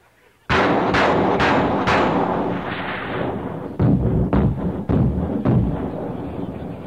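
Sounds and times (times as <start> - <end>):
heavy anti-aircraft cannon fire: 0.5 - 6.8.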